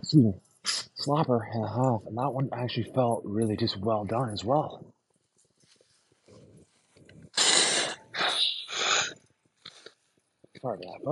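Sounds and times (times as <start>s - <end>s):
speech: 0.1s - 4.9s, 10.6s - 11.0s
person sniffling: 7.3s - 9.9s
person blowing nose: 7.4s - 9.2s
person sneezing: 7.4s - 9.2s.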